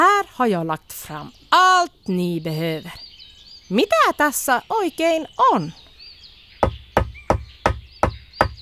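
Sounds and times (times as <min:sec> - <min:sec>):
speech: 0:00.4 - 0:03.1, 0:03.7 - 0:05.8
sharp hammer knocks: 0:06.6 - 0:08.6.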